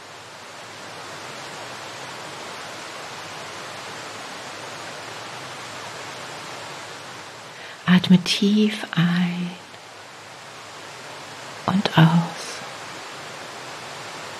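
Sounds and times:
Tamul waterfall rushing in a steady roar: 0.0 - 14.3
speech: 7.9 - 9.6, 11.7 - 12.4.

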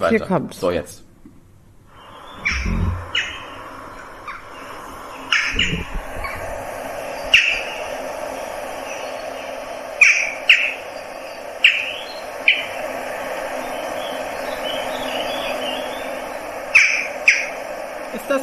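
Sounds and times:
speech: 0.0 - 1.1
outdoor hum: 0.0 - 18.4
jackdaw calls: 1.9 - 18.4
low thumps: 2.4 - 3.4.

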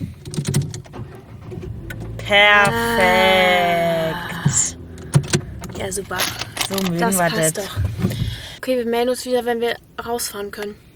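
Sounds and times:
car engine cranking and starting into idle: 0.0 - 8.6
speech: 2.3 - 4.2, 5.8 - 8.0, 8.7 - 10.9.

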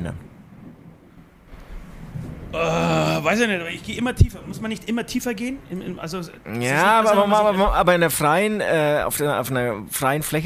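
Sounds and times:
thunder rumble during a thunderstorm: 0.0 - 5.7
storm noise: 0.0 - 6.5
speech: 2.5 - 10.4.

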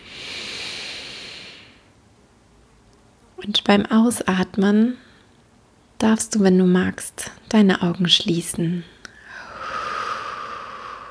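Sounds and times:
slow deep inhale into the belly: 0.0 - 1.9, 9.1 - 11.0
speech: 3.4 - 5.1, 6.0 - 8.9.

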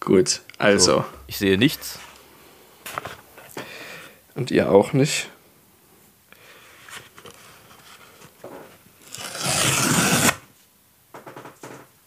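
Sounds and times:
speech: 0.0 - 2.1, 4.4 - 5.4
packing tape being peeled from a parcel: 9.0 - 10.4.

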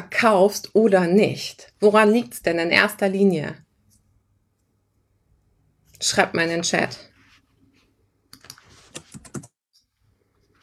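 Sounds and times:
speech: 0.2 - 3.6, 6.0 - 7.1
typing on a computer keyboard: 8.3 - 9.6.

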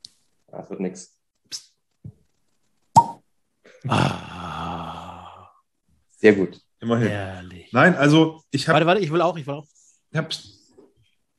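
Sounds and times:
speech: 0.5 - 1.7, 3.8 - 4.2, 6.2 - 10.6
cork popping as a bottle is opened: 2.9 - 3.2.

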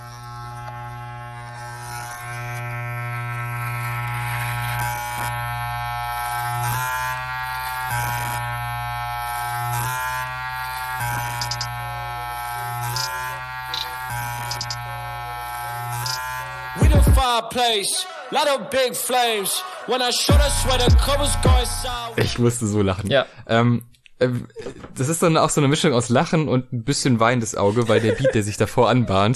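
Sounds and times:
electric razor buzzing: 0.0 - 17.4, 19.1 - 22.2
speech: 17.5 - 29.3
laughter: 27.4 - 29.3.

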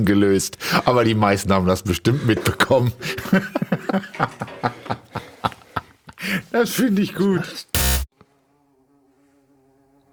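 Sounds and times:
speech: 0.0 - 5.2, 6.3 - 7.7
laughter: 2.0 - 7.3
loud thump: 7.8 - 8.1
bumblebee buzzing in flight inside a studio: 7.8 - 10.1.

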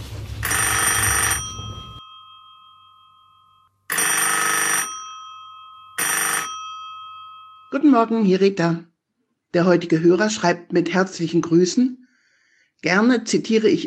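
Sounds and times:
telephone ringing with an incoming call: 0.4 - 7.8
speech: 7.7 - 8.9, 9.5 - 12.0, 12.8 - 13.8.

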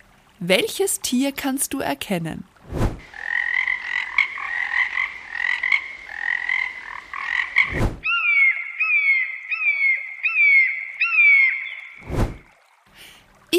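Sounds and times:
speech: 0.4 - 2.8
frogs croaking in buzzy pulsing bursts and chirping calls: 3.0 - 12.6.

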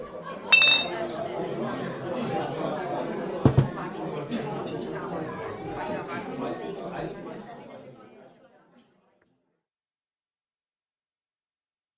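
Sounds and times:
steady murmur of voices and chatter: 0.0 - 8.7
glasses clinking together in a toast: 0.5 - 1.0.

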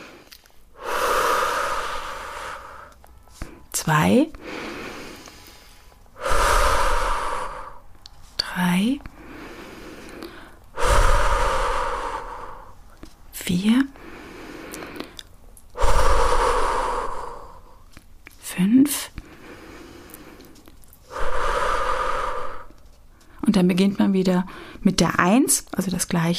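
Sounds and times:
slow deep breathing in and out: 0.0 - 3.7, 4.3 - 8.4, 9.0 - 13.2, 13.9 - 18.0, 19.1 - 23.4
speech: 3.9 - 4.8, 8.6 - 9.2, 13.5 - 14.0, 23.6 - 26.3.

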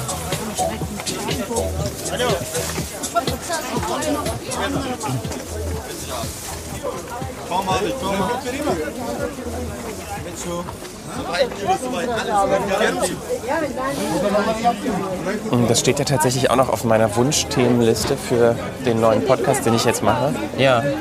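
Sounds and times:
busy market crowd chatter: 0.0 - 20.9
speech: 1.8 - 3.0, 3.9 - 20.9.

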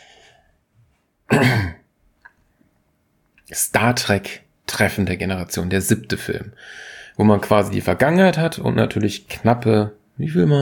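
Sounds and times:
speech: 1.3 - 1.7, 3.6 - 10.6
throat-clearing cough: 1.3 - 1.9.

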